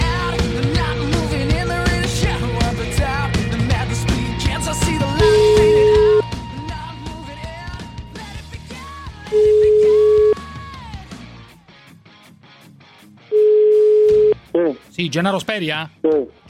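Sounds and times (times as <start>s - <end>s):
busy music: 0.0s - 16.4s
phone line ringing tone: 4.9s - 6.3s, 9.3s - 10.4s, 13.3s - 14.4s
speech: 15.0s - 16.4s.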